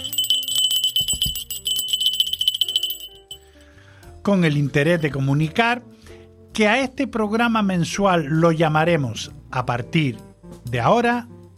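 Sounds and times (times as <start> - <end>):
small bell ringing rapidly: 0.0 - 3.6
speech: 4.2 - 11.5.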